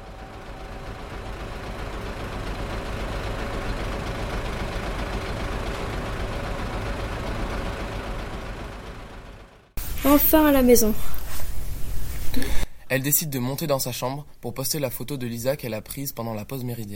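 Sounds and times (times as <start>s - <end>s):
bus engine rumble: 0.0s - 12.7s
speech: 10.1s - 11.2s, 12.9s - 16.9s.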